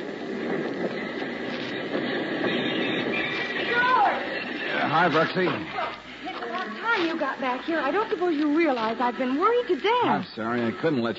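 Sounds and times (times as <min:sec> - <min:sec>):
work train rolling into a station in La Paz: 0:00.0 - 0:11.1
high-pitched train brake squeal: 0:00.9 - 0:05.9
speech: 0:05.0 - 0:05.8, 0:07.0 - 0:11.1.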